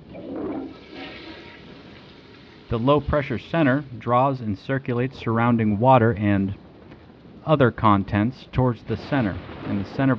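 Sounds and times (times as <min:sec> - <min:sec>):
toilet flushing: 0:00.1 - 0:03.8
speech: 0:02.7 - 0:06.6, 0:07.4 - 0:10.1.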